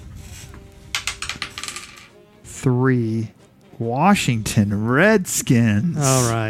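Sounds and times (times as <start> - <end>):
dice clattering and tumbling across a hard surface: 0.9 - 2.2
speech: 2.6 - 6.4.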